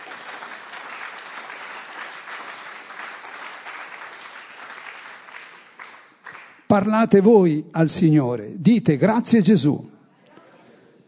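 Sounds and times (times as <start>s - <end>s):
audience applauding: 0.0s - 6.7s
speech: 6.7s - 9.9s.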